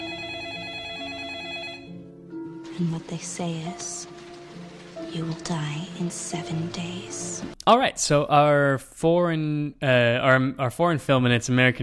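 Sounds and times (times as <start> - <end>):
telephone ringing with a loud tonal trill: 0.0 - 2.1
speech: 2.8 - 4.2, 5.1 - 11.8.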